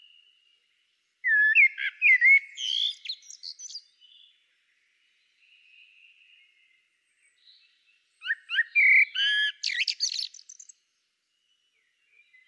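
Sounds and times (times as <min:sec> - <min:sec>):
Common blackbird Turdus merula singing fluting notes and twittering: 0:01.2 - 0:04.4, 0:05.3 - 0:10.8, 0:11.7 - 0:12.4.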